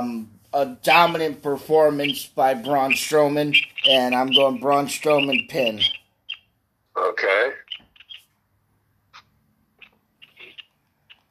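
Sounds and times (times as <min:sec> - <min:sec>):
speech: 0:00.0 - 0:06.0, 0:07.0 - 0:07.6
birds chirping outside: 0:00.9 - 0:08.3, 0:09.2 - 0:11.3.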